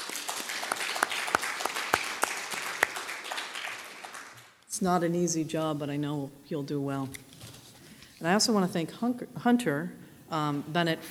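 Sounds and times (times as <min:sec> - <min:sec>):
audience applause: 0:00.0 - 0:04.6
individual sharp claps: 0:00.0 - 0:04.7
speech: 0:04.8 - 0:07.3, 0:08.2 - 0:11.1.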